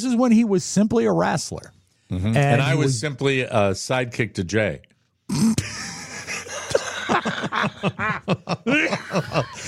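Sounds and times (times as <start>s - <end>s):
speech: 0.0s - 5.6s, 7.8s - 9.6s
person coughing in a fit: 5.3s - 6.0s
laughter: 5.7s - 9.6s.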